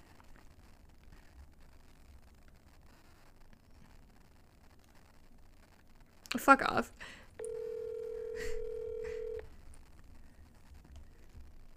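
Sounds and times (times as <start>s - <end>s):
speech: 6.4s - 7.2s
telephone dial tone while dialing: 7.4s - 9.4s.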